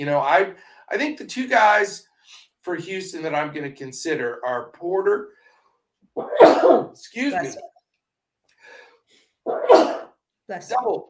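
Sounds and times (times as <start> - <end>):
speech: 0.0 - 5.4, 6.2 - 7.7, 9.4 - 11.0
person sneezing: 6.2 - 7.5, 9.5 - 10.2.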